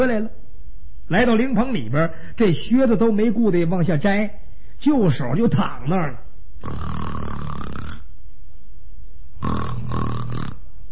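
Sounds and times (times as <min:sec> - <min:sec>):
speech: 0:00.0 - 0:00.4, 0:01.1 - 0:07.3
short quiet breath: 0:02.1 - 0:02.4, 0:04.4 - 0:04.8
storyteller imitating loud snoring: 0:06.6 - 0:08.1, 0:09.4 - 0:10.7.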